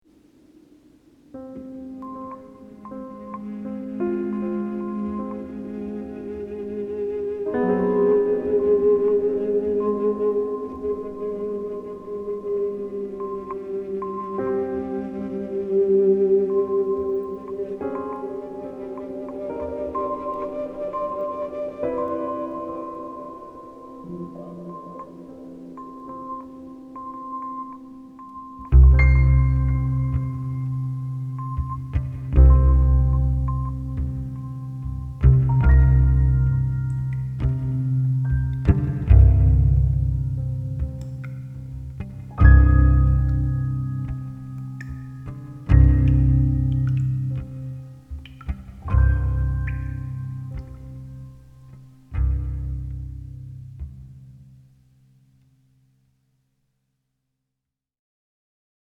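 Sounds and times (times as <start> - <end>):
slow ambient piano: 0.0 - 56.2
slow ambient cello: 1.4 - 54.6.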